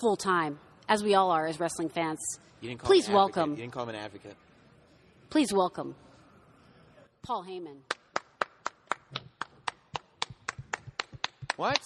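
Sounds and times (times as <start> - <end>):
speech: 0.0 - 4.5, 5.3 - 6.1, 7.2 - 8.0, 11.6 - 11.8
crisp hand claps: 7.9 - 11.8.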